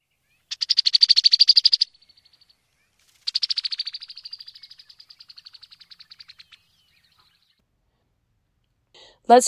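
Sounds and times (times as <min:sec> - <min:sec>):
brown-headed cowbird giving dry chattering rattles: 0:00.5 - 0:02.4, 0:03.0 - 0:07.3
speech: 0:09.3 - 0:09.4.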